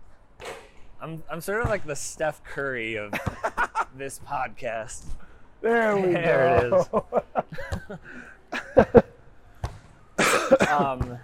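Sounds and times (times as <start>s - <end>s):
speech: 1.0s - 9.1s, 10.7s - 11.2s
laughter: 3.1s - 4.0s, 5.7s - 9.2s, 10.2s - 11.0s
person coughing in hacking bursts: 10.2s - 11.0s.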